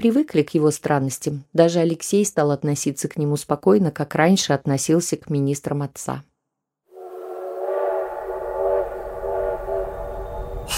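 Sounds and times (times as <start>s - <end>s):
speech: 0.0s - 6.3s
steam locomotive whistle blast: 7.0s - 10.7s.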